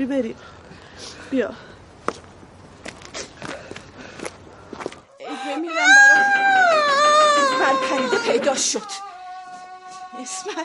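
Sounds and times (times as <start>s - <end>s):
speech: 0.0s - 2.2s, 7.9s - 9.0s, 10.2s - 10.6s
man wailing and sobbing: 5.7s - 10.6s.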